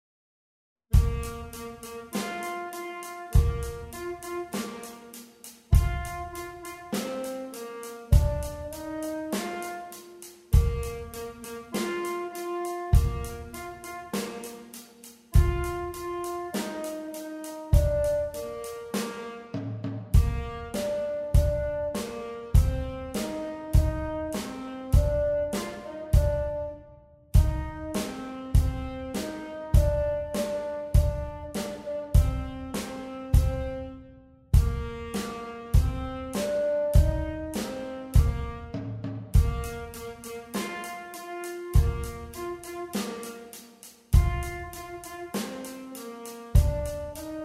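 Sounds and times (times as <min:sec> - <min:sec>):
rock tenor saxophone: 0:00.9 - 0:26.8, 0:27.4 - 0:47.4.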